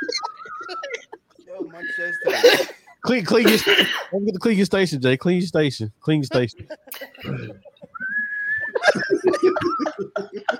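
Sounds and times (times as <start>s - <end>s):
people laughing or chuckling: 0.0s - 3.8s, 6.2s - 10.5s
person whistling a wavering tune: 1.8s - 2.4s, 8.0s - 8.8s, 9.6s - 10.0s
speech: 1.8s - 7.7s, 9.0s - 10.5s.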